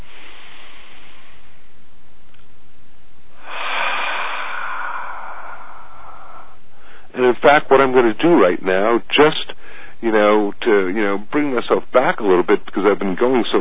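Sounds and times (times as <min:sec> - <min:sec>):
slow deep breath: 0:00.0 - 0:01.9, 0:03.3 - 0:07.2, 0:09.6 - 0:10.0
speech: 0:07.2 - 0:13.5.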